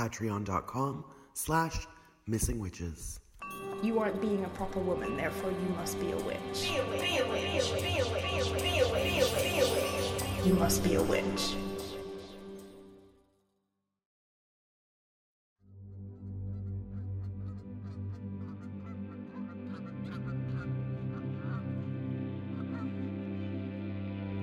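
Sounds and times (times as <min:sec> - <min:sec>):
speech: 0:00.0 - 0:03.2, 0:03.8 - 0:11.7
large flock of geese honking overhead: 0:03.9 - 0:12.3, 0:16.4 - 0:23.6.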